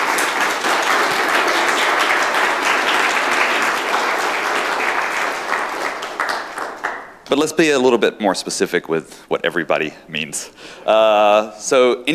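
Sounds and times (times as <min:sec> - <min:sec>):
audience applause at a conference: 0:00.0 - 0:07.2
speech: 0:07.3 - 0:12.1.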